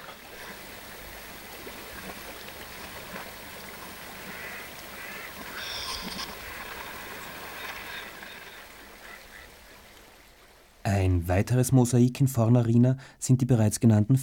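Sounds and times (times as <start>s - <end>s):
flowing river water: 0.0s - 11.0s
faint bird calls, possibly ducks: 4.2s - 10.0s
speech: 10.9s - 14.2s.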